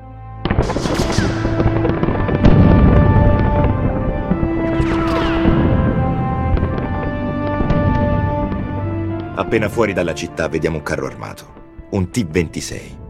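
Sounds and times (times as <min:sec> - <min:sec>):
explosions from aircraft bombing the surroundings of Teruel in Aragon: 0:00.4 - 0:09.4
speech: 0:09.5 - 0:13.0.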